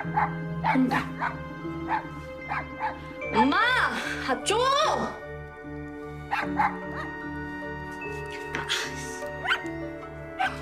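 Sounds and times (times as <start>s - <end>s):
small dog barking in yappy bursts: 0.0s - 3.0s, 6.3s - 7.1s, 9.4s - 9.7s, 10.4s - 10.6s
speech: 0.0s - 5.2s, 6.3s - 7.2s, 8.3s - 9.2s.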